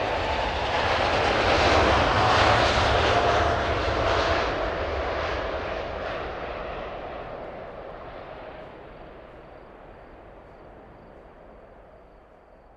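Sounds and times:
airplane engine roaring in flight: 0:00.0 - 0:12.7.

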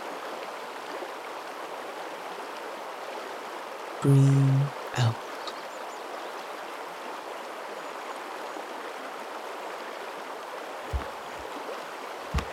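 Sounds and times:
flowing river water rushing: 0:00.0 - 0:04.0, 0:04.8 - 0:12.5
speech: 0:04.0 - 0:05.2
soft low thumps: 0:10.9 - 0:11.5, 0:12.3 - 0:12.5.

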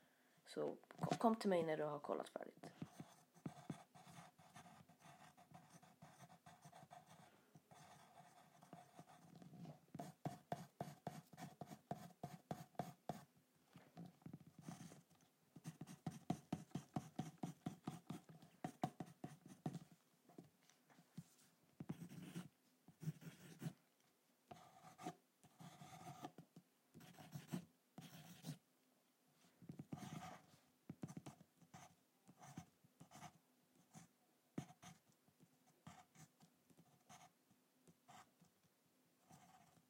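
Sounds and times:
speech: 0:00.5 - 0:02.8
drawing on paper: 0:02.8 - 0:13.3, 0:14.4 - 0:19.9, 0:21.8 - 0:23.8, 0:24.5 - 0:26.4, 0:27.0 - 0:28.6, 0:29.8 - 0:34.0.

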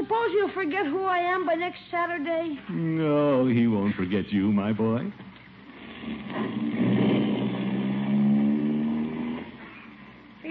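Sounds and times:
speech: 0:00.1 - 0:05.3, 0:06.0 - 0:07.0
car engine humming as the vehicle drives along: 0:06.1 - 0:10.4.

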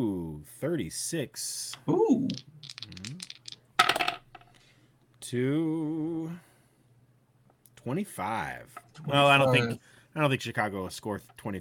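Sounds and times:
speech: 0:00.0 - 0:03.2, 0:05.2 - 0:06.5, 0:07.8 - 0:11.5
dice tumbling and settling: 0:02.2 - 0:04.5.

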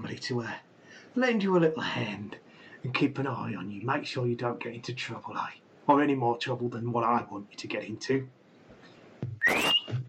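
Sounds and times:
speech: 0:00.1 - 0:08.4, 0:09.3 - 0:10.0
rough noise in a bar: 0:08.1 - 0:10.0
man whistling sharply in a bar: 0:09.4 - 0:10.0.

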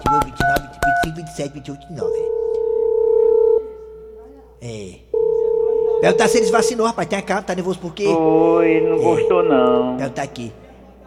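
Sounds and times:
speech: 0:01.2 - 0:02.6, 0:04.6 - 0:05.1, 0:06.0 - 0:10.6
telephone dial tone: 0:02.2 - 0:03.8, 0:05.2 - 0:06.7, 0:08.7 - 0:10.0.

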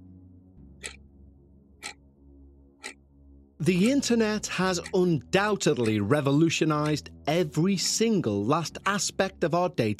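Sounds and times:
low steady droning music bed: 0:00.0 - 0:09.9
clock ticking: 0:00.8 - 0:01.0, 0:01.8 - 0:02.0, 0:02.8 - 0:03.0, 0:03.6 - 0:07.4
speech: 0:03.6 - 0:09.9.

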